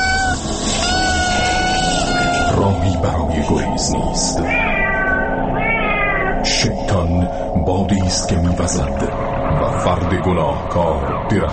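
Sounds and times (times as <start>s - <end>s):
kitten meowing: 0.0s - 2.6s, 4.4s - 6.4s
low rumbling background: 0.0s - 11.5s
speech: 2.6s - 4.9s, 6.6s - 11.5s.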